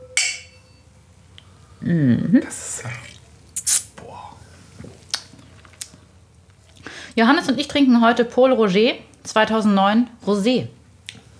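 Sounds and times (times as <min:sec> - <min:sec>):
wine glasses clinking in a toast: 0:00.0 - 0:00.9
speech: 0:01.8 - 0:03.2, 0:07.2 - 0:10.8.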